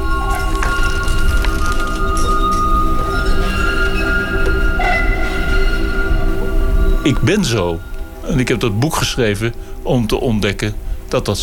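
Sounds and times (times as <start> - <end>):
old tram motor rumble and whine getting under way: 0.0 - 11.4
speech: 7.1 - 11.4.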